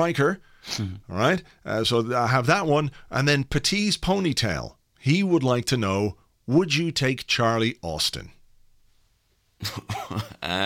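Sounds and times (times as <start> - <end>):
speech: 0.0 - 8.4, 9.6 - 10.6
person coughing in rough bursts: 9.6 - 10.6.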